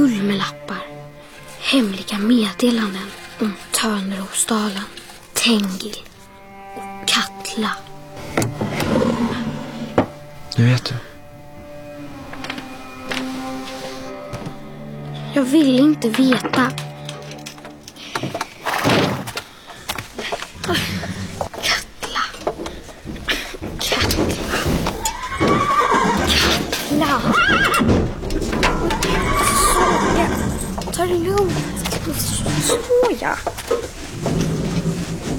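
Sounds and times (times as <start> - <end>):
speech: 0.2 - 0.7, 1.7 - 6.1, 7.1 - 8.5, 10.6 - 11.1, 15.4 - 16.8, 18.2 - 18.5
horse neighing and whinnying: 8.7 - 10.0, 25.0 - 33.0
hooves clip-clopping on a hard floor: 19.4 - 35.3.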